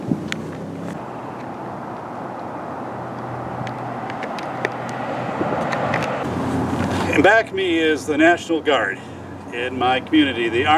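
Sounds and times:
breezy wind-buffeted background: 0.0 - 7.0
steady outdoor roar of traffic with vehicles rumbling by: 0.0 - 10.7
speech: 7.2 - 10.7.

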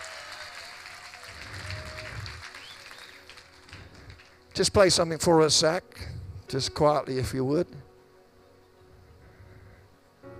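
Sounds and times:
audience applause for the keyboard player: 0.0 - 4.7
speech: 4.6 - 7.8.

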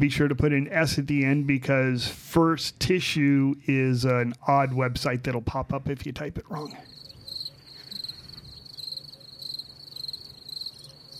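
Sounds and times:
speech: 0.0 - 6.9
cricket chirping: 6.6 - 11.1.

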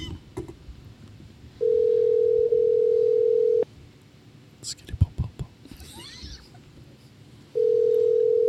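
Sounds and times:
phone call ringing tone: 1.6 - 3.6, 7.6 - 8.4.

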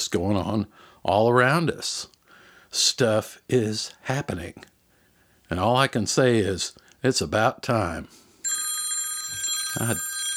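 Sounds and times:
speech: 0.1 - 4.7, 5.5 - 8.2, 9.8 - 10.1
telephone ringing with a bright metallic trill: 8.4 - 10.3.

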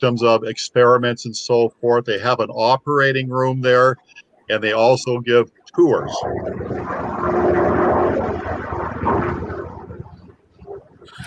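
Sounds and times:
speech: 0.0 - 7.9
military helicopter flying low overhead on a flyover: 6.0 - 10.3.

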